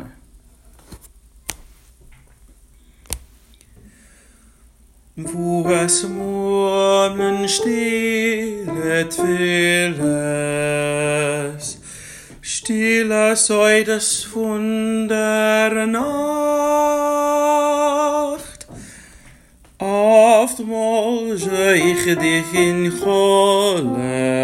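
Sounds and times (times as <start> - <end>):
soprano singing verse part: 5.2 - 11.8, 12.4 - 18.6, 19.8 - 24.4.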